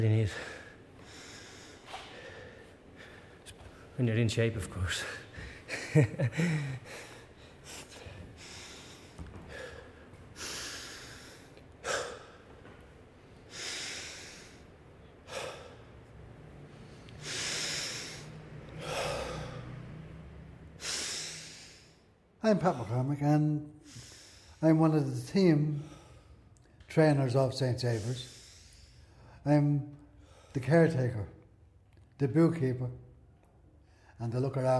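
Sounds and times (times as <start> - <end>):
speech: 0.0 - 0.6, 4.0 - 5.2, 5.9 - 7.1, 22.5 - 23.8, 24.6 - 26.0, 26.9 - 28.3, 29.4 - 30.0, 30.6 - 31.4, 32.2 - 33.0, 34.2 - 34.7
person breathing deeply after exertion: 0.0 - 4.0, 5.0 - 23.1, 23.7 - 24.8, 25.6 - 26.6, 27.8 - 29.4.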